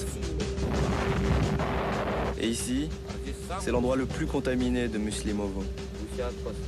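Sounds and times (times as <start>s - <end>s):
powerful explosion rumble: 0.6s - 2.4s
speech: 2.4s - 6.6s.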